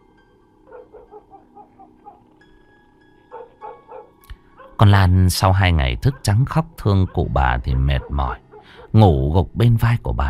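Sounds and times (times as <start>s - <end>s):
dog barking at night in a seaside area: 0.6s - 2.3s, 3.2s - 4.8s, 6.0s - 9.0s
speech: 4.8s - 10.2s.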